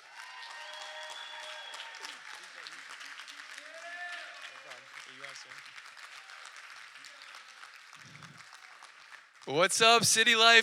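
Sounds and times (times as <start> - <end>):
scattered voices and cheers: 0.0 - 2.6, 3.6 - 4.6
large audience applause at a church service: 0.0 - 10.6
speech: 9.5 - 10.6.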